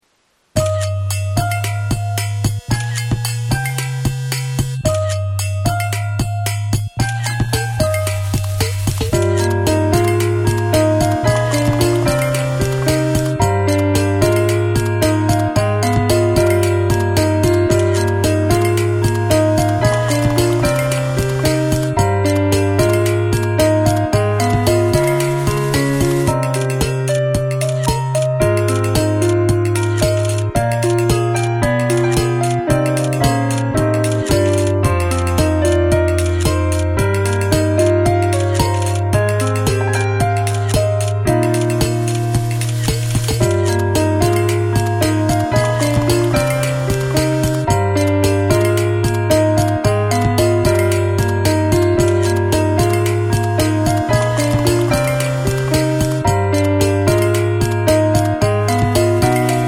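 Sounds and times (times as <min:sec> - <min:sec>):
piano playing in the house: 0:00.6 - 0:59.6.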